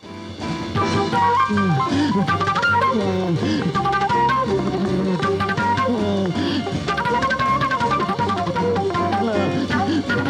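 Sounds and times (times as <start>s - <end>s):
flute playing lively melodic phrases: 0.0s - 10.2s
speech: 1.1s - 5.4s
laughter: 1.2s - 6.9s, 9.0s - 10.2s.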